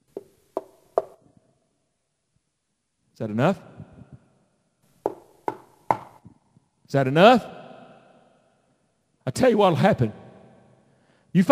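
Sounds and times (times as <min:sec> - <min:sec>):
knocking: 0:00.0 - 0:01.2, 0:05.0 - 0:06.3
speech: 0:03.2 - 0:03.9, 0:06.9 - 0:07.6, 0:09.4 - 0:10.2, 0:11.4 - 0:11.5.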